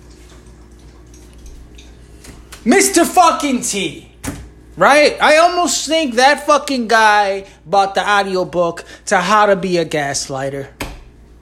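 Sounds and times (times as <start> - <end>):
pet lapping up water: 0.0 - 2.5
speech: 2.6 - 10.8.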